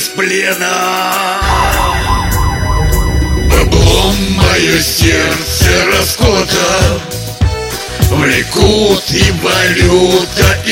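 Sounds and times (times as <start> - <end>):
speech: 0.2 - 1.8, 3.9 - 7.2, 8.1 - 10.7
siren wailing: 1.4 - 5.4
low rumble: 1.4 - 6.2.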